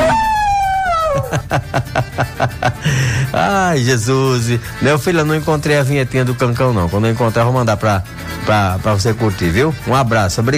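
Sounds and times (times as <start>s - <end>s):
dog howling: 0.0s - 1.4s
laughter: 0.9s - 3.4s
speech: 1.5s - 10.5s.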